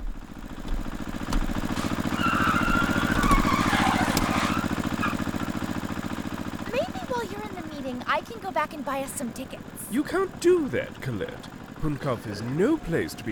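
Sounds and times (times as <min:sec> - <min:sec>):
car engine running while driving: 0:00.0 - 0:13.2
broadband road noise: 0:00.2 - 0:13.2
speech: 0:08.6 - 0:13.2.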